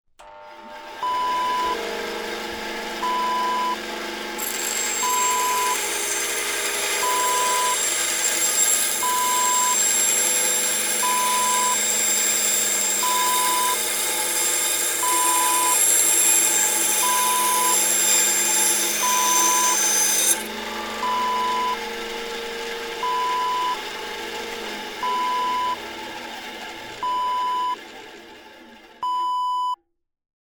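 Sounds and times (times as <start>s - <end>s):
band saw: 0.5s - 29.0s.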